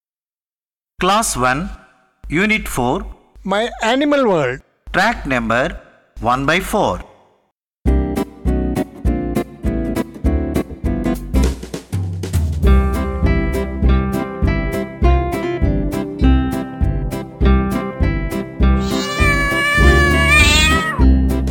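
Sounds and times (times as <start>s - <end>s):
speech: 1.0s - 7.1s
bright bouncy instrumental track with a steady beat: 7.9s - 21.5s
high drawn-out cat meow: 18.8s - 21.1s.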